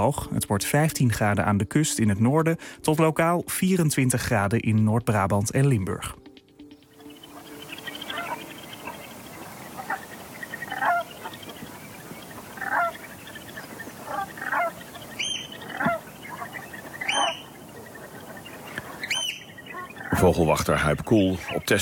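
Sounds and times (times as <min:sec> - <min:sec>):
speech: 0:00.0 - 0:06.3, 0:20.6 - 0:21.8
steady hiss: 0:06.4 - 0:21.8
brent geese calling in a tidal salt marsh: 0:06.8 - 0:21.8.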